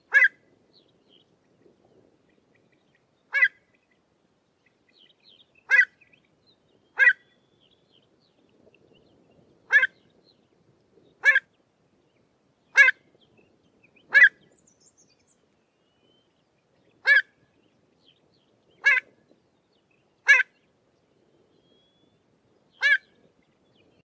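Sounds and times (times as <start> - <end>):
pied avocet calling: 0.1 - 0.4, 3.3 - 3.6, 5.6 - 6.1, 7.0 - 7.4, 9.7 - 10.0, 12.7 - 13.0, 14.1 - 14.5, 17.0 - 17.4, 20.2 - 20.6, 22.8 - 23.1.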